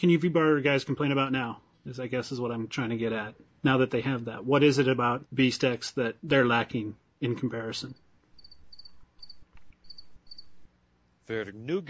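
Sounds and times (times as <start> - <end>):
speech: 0.0 - 8.0, 11.3 - 11.8
crickets chirping: 7.9 - 10.7.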